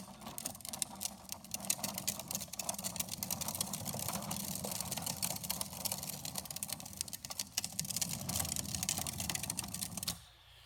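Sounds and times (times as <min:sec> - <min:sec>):
child's small ride-on toy car motor whirring and rattling: 0:00.0 - 0:10.2.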